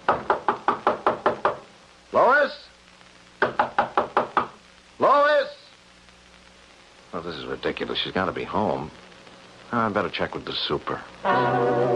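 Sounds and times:
rapid firm knocking on a door: 0:00.0 - 0:01.7, 0:03.4 - 0:04.6
speech: 0:02.1 - 0:02.7, 0:07.2 - 0:09.1, 0:09.7 - 0:11.9.

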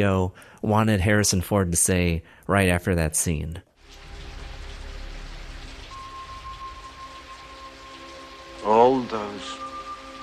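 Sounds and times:
speech: 0:00.0 - 0:03.7
steady dense rain hissing with a low rumble: 0:03.8 - 0:10.2
thin sustained tone: 0:05.9 - 0:10.2.

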